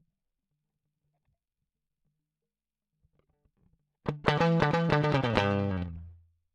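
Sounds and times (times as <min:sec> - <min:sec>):
guitar solo line: 0:04.1 - 0:06.1.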